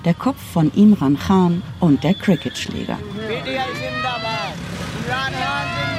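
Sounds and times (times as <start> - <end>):
passing car and motorcycle convoy engines rumbling at night: 0.0 - 5.9
speech: 0.0 - 5.9
supporters shouting and chanting: 2.8 - 5.9.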